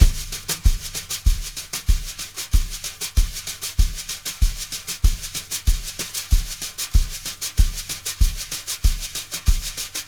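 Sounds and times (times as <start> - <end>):
drum brushes: 0.0 - 10.0.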